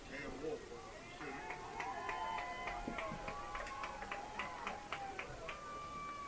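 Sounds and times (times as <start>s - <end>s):
stadium crowd cheers: 0.8s - 6.2s
stadium crowd hand claps: 1.4s - 6.2s.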